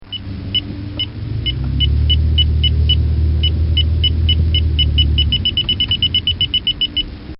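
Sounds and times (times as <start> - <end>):
military radar detector: 1.4 - 7.1.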